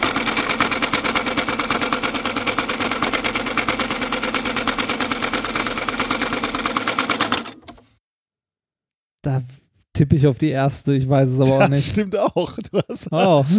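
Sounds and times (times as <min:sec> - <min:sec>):
sewing machine running at high speed: 0:00.0 - 0:07.8
speech: 0:10.0 - 0:13.5
laughter: 0:11.4 - 0:13.5.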